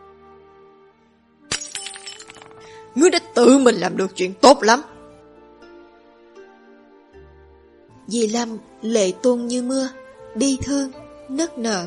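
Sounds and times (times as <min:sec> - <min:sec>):
porcelain teacup fragments clinking: 0:01.5 - 0:02.7
porcelain teacup thrown down and shattering on the ground: 0:01.5 - 0:02.8
speech: 0:02.9 - 0:04.9, 0:08.1 - 0:11.8.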